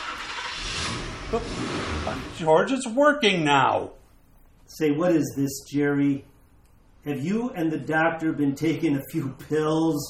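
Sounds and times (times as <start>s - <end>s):
car engine cranking over on its starter: 0.0s - 2.5s
speech: 1.3s - 4.0s, 4.7s - 6.3s, 7.0s - 10.0s.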